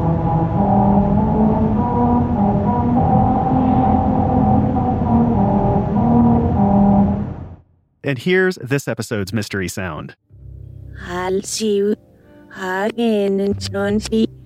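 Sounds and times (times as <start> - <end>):
car tires droning over musical grooves cut into pavement: 0.0 - 7.6
speech: 8.1 - 10.2, 11.0 - 12.0, 12.6 - 14.4.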